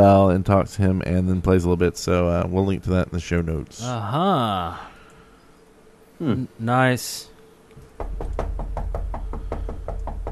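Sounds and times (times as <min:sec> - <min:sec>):
speech: 0:00.0 - 0:04.9, 0:06.2 - 0:07.3
low hum: 0:00.0 - 0:10.2
knocking on a door: 0:07.8 - 0:10.2.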